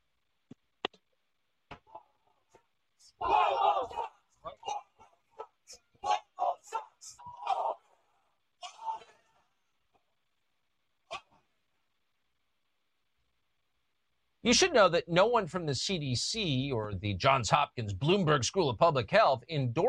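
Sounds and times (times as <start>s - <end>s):
protest crowd shouting angrily after a man's arrest: 3.2s - 5.1s, 5.9s - 7.9s
speech: 14.5s - 19.8s.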